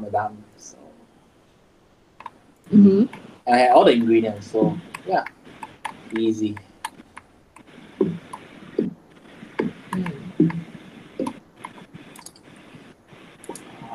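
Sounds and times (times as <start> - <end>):
speech: 0.0 - 0.8, 2.7 - 5.4, 6.1 - 6.7
quiet hiss: 0.0 - 13.9
computer mouse or keys clicking: 4.8 - 9.0, 9.6 - 12.8, 13.4 - 13.9.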